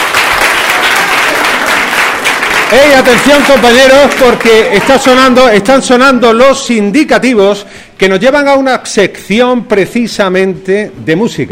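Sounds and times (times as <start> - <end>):
audience applause at a secondary school: 0.0 - 5.5
speech: 2.7 - 11.5.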